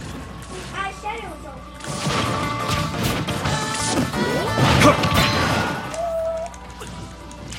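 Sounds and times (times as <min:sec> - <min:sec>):
video game smash attack crashing and thwacking impacts: 0:01.8 - 0:06.0.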